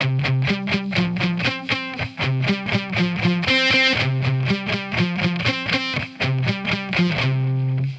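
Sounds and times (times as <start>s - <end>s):
alternative rock guitar sample: 0.0s - 7.9s.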